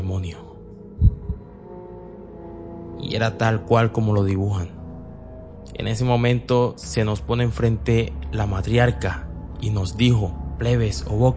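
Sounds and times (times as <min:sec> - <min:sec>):
speech: 0:00.1 - 0:00.6, 0:03.1 - 0:04.8, 0:05.7 - 0:11.3
deep pounding lub-dub heartbeat: 0:01.0 - 0:01.5
low steady hum: 0:01.0 - 0:01.8.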